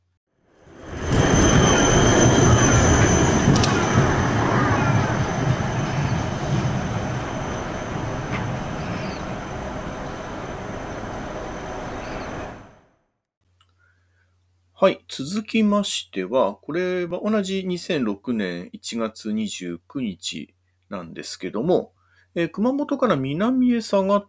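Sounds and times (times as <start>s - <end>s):
high whine of a streetcar: 0.4s - 12.8s
streetcar rumbling on rails: 0.5s - 12.8s
faint metallic squeals of a streetcar: 0.8s - 9.4s
speech: 14.8s - 24.2s.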